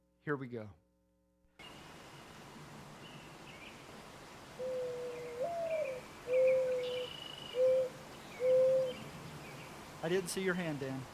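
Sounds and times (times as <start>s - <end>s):
speech: 0.2s - 0.8s, 10.0s - 11.1s
mourning dove cooing: 4.6s - 9.1s.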